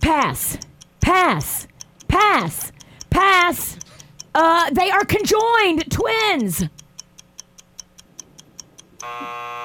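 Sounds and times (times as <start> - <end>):
game timer ticking: 0.0 - 9.3
speech: 0.1 - 2.8, 3.4 - 6.8, 9.0 - 9.6
game timer electronic buzzer: 9.0 - 9.6.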